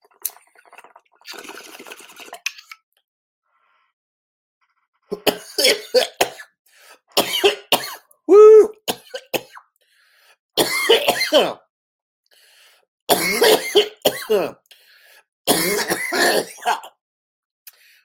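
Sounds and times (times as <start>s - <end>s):
harsh coughing and throat clearing: 5.1s - 6.5s, 7.2s - 8.1s, 10.6s - 11.6s, 13.1s - 14.6s, 15.5s - 17.0s.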